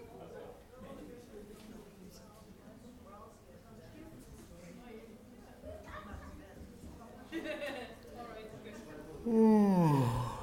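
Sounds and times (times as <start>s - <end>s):
person yawning: 9.2s - 10.4s
quiet breathy vocal sound: 9.2s - 10.4s.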